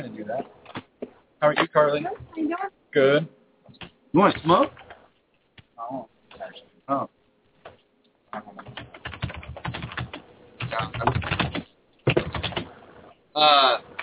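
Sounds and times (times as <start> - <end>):
speech: 0.0 - 0.7, 1.4 - 3.4, 4.1 - 4.8, 5.9 - 7.2, 13.4 - 13.9
rapid typing on a computer keyboard: 8.6 - 12.7.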